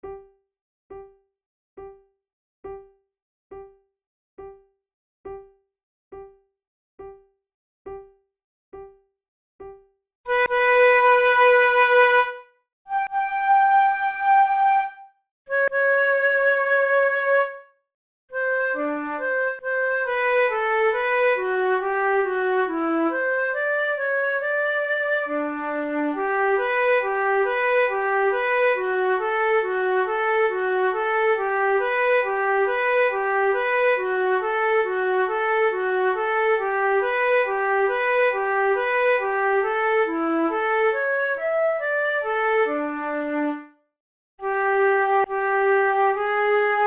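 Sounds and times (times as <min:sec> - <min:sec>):
solo flute fantasia: 0:10.3 - 0:17.8, 0:18.4 - 0:43.8, 0:44.4 - 0:46.8.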